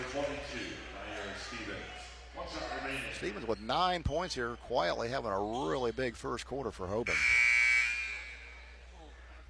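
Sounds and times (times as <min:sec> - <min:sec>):
speech: 0:02.5 - 0:07.4
basketball arena electronic buzzer: 0:07.1 - 0:08.4.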